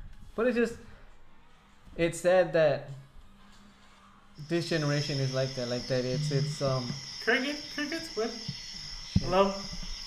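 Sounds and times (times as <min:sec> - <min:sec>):
speech: 0:00.4 - 0:00.9, 0:02.0 - 0:03.0, 0:04.4 - 0:08.6, 0:09.2 - 0:09.8
high-pitched drone of crickets chirping: 0:04.4 - 0:10.0.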